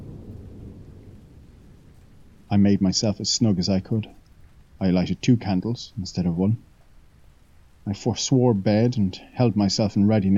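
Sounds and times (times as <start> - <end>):
heavy rain pouring on streets during a thunderstorm: 0.0 - 10.3
speech: 2.5 - 4.2, 4.8 - 6.7, 7.8 - 10.3.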